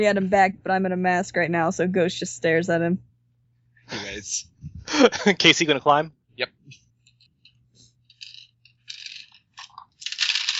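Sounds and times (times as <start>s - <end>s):
speech: 0.0s - 3.1s, 3.9s - 6.8s
dice clattering onto a table during a tabletop game: 8.1s - 10.5s.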